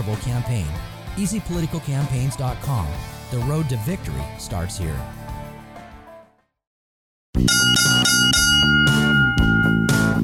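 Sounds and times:
speech: 0.0s - 5.2s
fading tone: 7.5s - 10.2s
loud ringing bell marking the final round: 7.5s - 10.2s.

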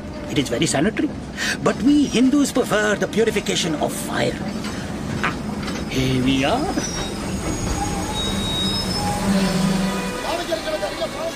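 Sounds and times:
heavy rumble of rolling train carriages: 0.0s - 11.3s
speech: 0.3s - 4.8s, 6.0s - 7.1s, 9.3s - 9.7s
train wheels squealing as it pulls in: 4.6s - 11.3s.

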